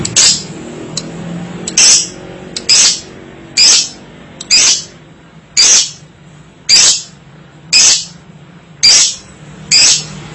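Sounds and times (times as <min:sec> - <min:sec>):
lovebird making harsh noisy screeches: 0:00.1 - 0:00.5, 0:01.8 - 0:05.0, 0:05.5 - 0:06.0, 0:06.7 - 0:07.2, 0:07.7 - 0:08.2, 0:08.8 - 0:10.2.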